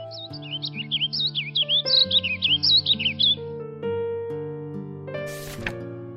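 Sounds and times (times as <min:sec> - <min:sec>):
small sparrow chirping: 0:00.0 - 0:03.6
soft music: 0:00.0 - 0:06.1.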